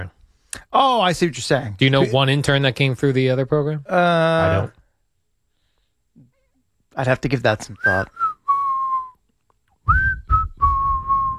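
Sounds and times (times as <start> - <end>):
speech: 0.0 - 4.8, 7.0 - 8.2
person whistling a short tune: 8.1 - 9.2, 9.9 - 11.3.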